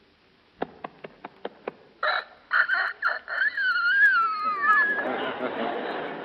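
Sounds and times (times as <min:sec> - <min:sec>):
four-month-old rooster clucking: 0:00.9 - 0:06.0
four-month-old rooster attempting to crow: 0:02.0 - 0:05.1
laughter: 0:04.0 - 0:06.2.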